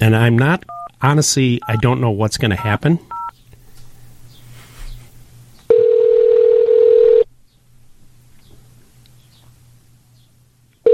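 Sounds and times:
speech: 0.0 - 3.1
faint hum on telephone line: 0.0 - 10.9
telephone ringback tone over the line after dialling: 5.7 - 7.3.

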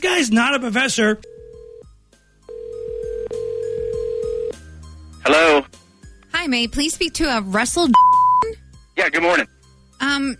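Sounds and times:
speech: 0.2 - 1.3, 6.4 - 10.3
phone ringback tone on an outgoing call: 1.2 - 1.9, 2.5 - 4.6.

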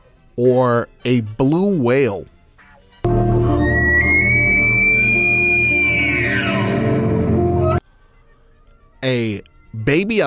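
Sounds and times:
speech: 0.4 - 2.3, 9.0 - 10.2
elk bugle: 3.1 - 7.8
low hum: 3.1 - 7.8.

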